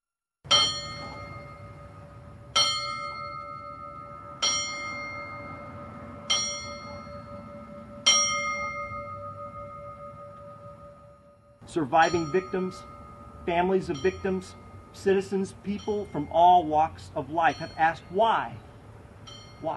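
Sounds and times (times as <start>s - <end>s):
single bell tolling as a memorial tribute: 0.5s - 18.6s, 19.2s - 19.7s
speech: 11.7s - 12.9s, 13.5s - 18.7s, 19.6s - 19.7s.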